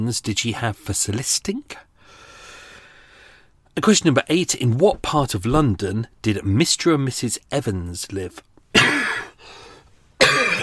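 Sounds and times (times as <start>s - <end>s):
speech: 0.0s - 1.9s, 3.8s - 8.5s
person coughing in harsh raspy bursts: 8.7s - 9.4s, 10.2s - 10.6s.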